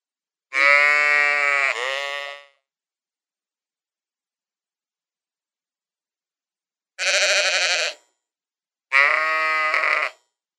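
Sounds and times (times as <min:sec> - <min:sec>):
sheep drawn-out bleats: 0:00.5 - 0:02.6, 0:07.0 - 0:08.0, 0:08.9 - 0:10.2.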